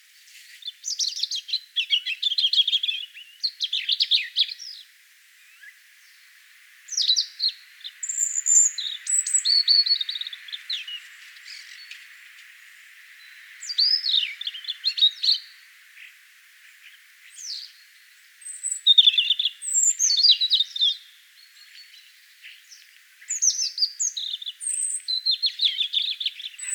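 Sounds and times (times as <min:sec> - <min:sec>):
European robin singing: 0:00.6 - 0:26.7.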